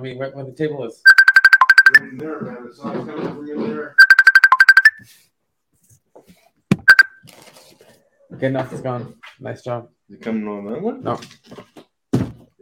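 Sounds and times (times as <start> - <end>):
speech: 0.0 - 1.2, 1.9 - 4.0, 5.0 - 5.3, 8.4 - 11.6
computer incoming-call ringtone: 1.1 - 2.1, 4.0 - 5.0, 6.9 - 7.1
thump: 12.1 - 12.5.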